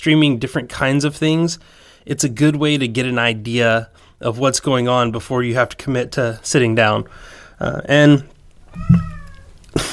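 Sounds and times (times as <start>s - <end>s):
speech: 0.0s - 9.1s, 9.8s - 9.9s
cat meowing agitatedly: 8.6s - 9.7s.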